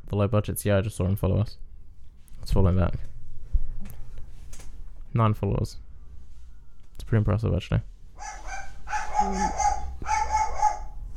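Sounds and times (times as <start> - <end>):
speech: 0.1 - 1.6, 2.4 - 3.1, 5.2 - 5.8, 7.1 - 8.4, 9.2 - 9.6
dog giving drawn-out strained barks: 8.2 - 11.0.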